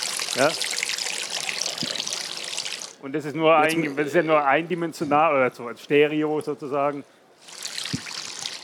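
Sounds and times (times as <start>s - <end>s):
trickling water from a small aquarium waterfall: 0.0s - 3.0s, 7.4s - 8.6s
speech: 0.4s - 0.8s, 3.0s - 7.2s.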